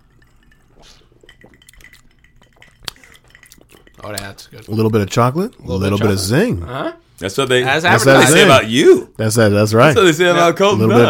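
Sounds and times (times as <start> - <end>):
faint tableware clatter: 0.0 - 4.9
glasses clinking in a toast with Old Fashioned drinks: 0.0 - 5.6
speech: 4.0 - 11.0.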